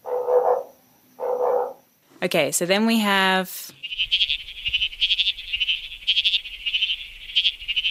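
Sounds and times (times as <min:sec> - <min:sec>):
tiny frog's bleating sheep-like call: 0:00.0 - 0:01.9, 0:03.8 - 0:07.8
speech: 0:02.2 - 0:04.3.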